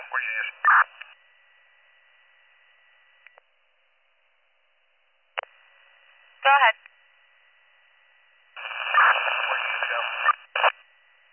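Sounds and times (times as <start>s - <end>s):
harsh tinny radio static: 0.0s - 1.2s, 6.4s - 6.8s, 8.6s - 11.3s
speech: 0.1s - 1.2s.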